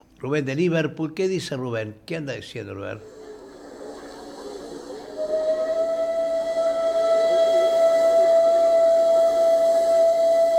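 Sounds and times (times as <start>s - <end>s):
speech: 0.2s - 3.2s
arriving train rumbling hiss: 3.0s - 10.5s
arriving train whistle: 4.4s - 10.5s.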